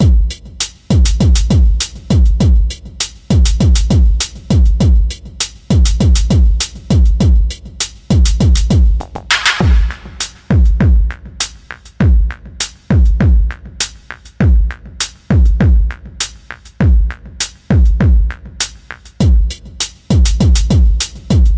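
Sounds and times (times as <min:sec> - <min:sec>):
rock techno music: 0:00.0 - 0:21.5.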